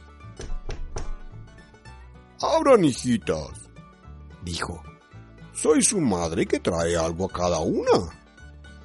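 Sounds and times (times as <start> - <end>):
knocking on a wooden door: 0.4 - 1.4
speech: 2.4 - 3.6, 4.4 - 4.9, 5.6 - 8.2.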